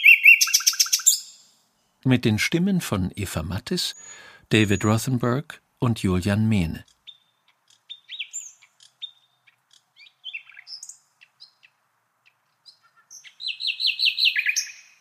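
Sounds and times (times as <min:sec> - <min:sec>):
nightingale singing with varied whistles, chirps and trills: 0:00.0 - 0:01.6, 0:03.8 - 0:05.3, 0:06.5 - 0:15.0
speech: 0:02.0 - 0:06.9.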